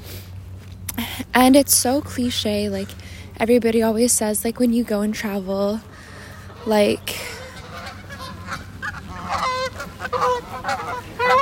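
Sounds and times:
speech: 1.2s - 5.9s, 6.6s - 7.3s
flock of geese honking while flying overhead by a seawall: 5.8s - 11.3s.

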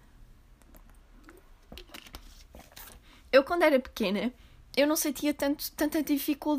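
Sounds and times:
small gulps: 0.6s - 1.9s
person sipping water: 0.8s - 2.0s
speech: 3.3s - 6.5s.

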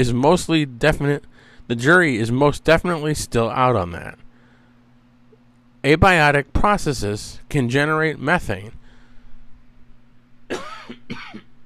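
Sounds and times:
speech: 0.0s - 4.2s, 5.8s - 8.8s
faint steady hum: 0.0s - 11.6s
person coughing from allergy: 10.5s - 11.6s.

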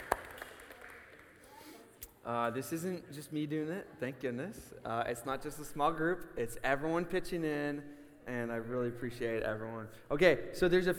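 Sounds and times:
crowd clapping in a large room: 0.0s - 1.6s
speech: 2.3s - 10.9s.

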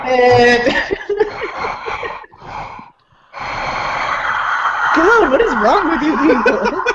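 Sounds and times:
speech: 0.1s - 1.0s, 5.3s - 6.9s
laughter: 0.3s - 2.6s, 5.0s - 6.9s
heavy breathing into a microphone: 1.1s - 4.4s.

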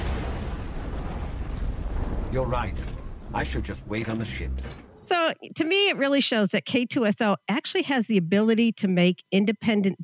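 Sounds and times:
explosions in a battle scene from a film: 0.0s - 4.1s
speech: 2.3s - 10.0s.

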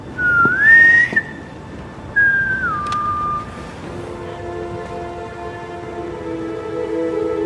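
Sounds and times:
two-part whistled signal shared between two people: 0.0s - 1.5s, 2.1s - 3.6s.

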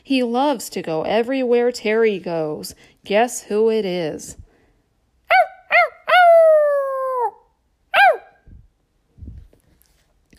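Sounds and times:
speech: 0.1s - 4.4s
dog barking: 5.3s - 6.2s, 7.9s - 8.4s
dog giving a long drawn-out howl: 5.3s - 8.4s.

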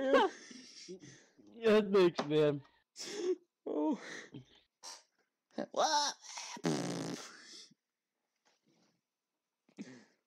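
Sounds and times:
speech: 0.9s - 3.2s, 3.9s - 4.4s, 5.6s - 6.2s
fart: 6.6s - 7.4s.

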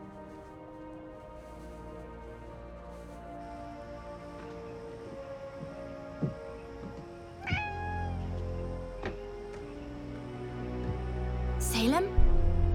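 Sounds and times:
steady low hum: 1.2s - 12.7s
cat meowing: 7.4s - 8.3s.

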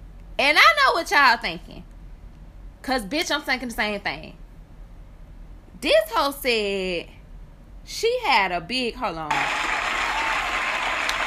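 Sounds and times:
speech: 0.4s - 1.9s, 2.8s - 4.4s, 5.8s - 7.2s, 7.9s - 9.6s
crowd applause: 9.3s - 11.2s.

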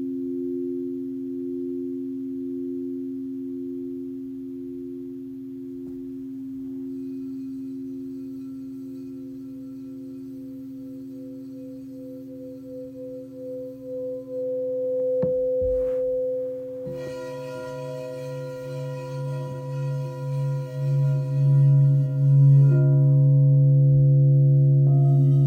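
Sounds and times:
several singing bowls ringing in overlapping tones: 5.5s - 25.4s.

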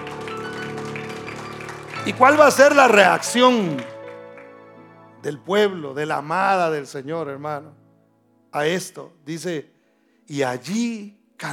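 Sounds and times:
audience applauding: 0.0s - 5.0s
speech: 2.0s - 3.9s, 5.2s - 7.8s, 8.5s - 9.7s, 10.3s - 11.5s.

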